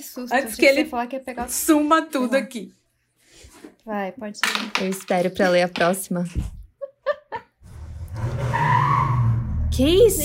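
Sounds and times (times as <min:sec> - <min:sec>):
speech: 0:00.0 - 0:02.8, 0:03.4 - 0:06.6, 0:09.8 - 0:10.2
laughter: 0:06.8 - 0:07.6
car engine roaring: 0:07.6 - 0:10.2
car tires squealing while peeling out: 0:07.7 - 0:10.2.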